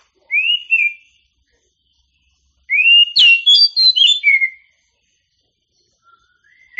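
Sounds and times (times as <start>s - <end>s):
champion Oriental magpie-robin singing whistled phrases: 0.3s - 1.2s, 2.7s - 4.7s, 5.9s - 6.7s.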